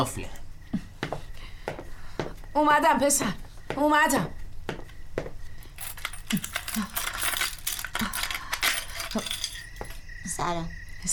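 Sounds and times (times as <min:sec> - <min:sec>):
speech: 0:00.0 - 0:00.4, 0:02.6 - 0:04.4, 0:09.2 - 0:09.4, 0:10.4 - 0:11.1
door keys jangling and clinking: 0:05.6 - 0:10.0.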